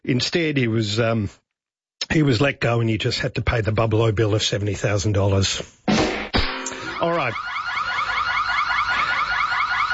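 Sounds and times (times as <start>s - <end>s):
speech: 0.0s - 1.4s, 2.1s - 5.8s, 7.0s - 7.6s
electronic alarm with warbling high-pitched siren-like tone: 6.5s - 9.9s.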